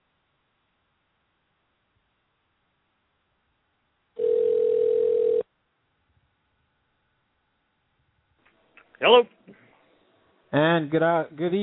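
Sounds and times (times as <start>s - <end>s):
phone ringback tone from a call being placed: 4.2s - 5.4s
speech: 9.0s - 9.4s, 10.5s - 11.6s.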